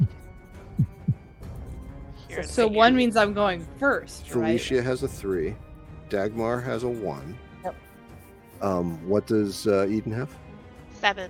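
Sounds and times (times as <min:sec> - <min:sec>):
heartbeat sound effect: 0:00.0 - 0:01.3
speech: 0:02.4 - 0:07.8, 0:08.6 - 0:10.4, 0:11.0 - 0:11.2.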